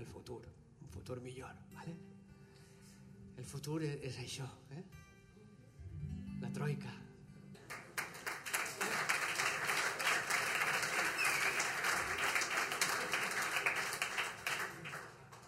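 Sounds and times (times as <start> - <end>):
speech: 0.0 - 2.2, 3.4 - 5.1, 6.0 - 7.1
audience at a stage event applauding: 7.6 - 15.4.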